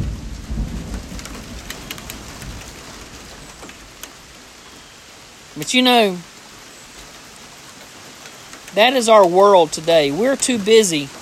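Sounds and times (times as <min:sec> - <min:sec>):
low rumble of thunder: 0:00.0 - 0:03.6
steady rain: 0:00.0 - 0:11.1
speech: 0:05.6 - 0:06.3, 0:08.8 - 0:11.1.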